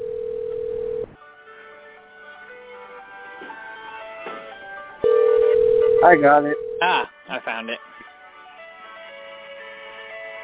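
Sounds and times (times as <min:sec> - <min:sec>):
telephone ringing tone over a phone line: 0:00.0 - 0:01.2, 0:05.0 - 0:07.0
speech: 0:06.0 - 0:07.9.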